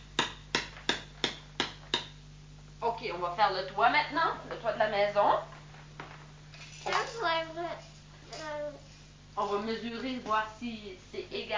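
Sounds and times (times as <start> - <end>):
hammer striking a nail: 0.0 - 2.2
speech: 3.0 - 5.5, 6.8 - 7.9, 9.4 - 11.5.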